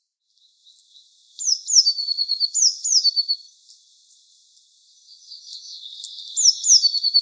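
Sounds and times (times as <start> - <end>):
Eurasian blue tit Cyanistes caeruleus calling with high thin notes and buzzy trills: 0.4 - 3.8, 5.0 - 7.1.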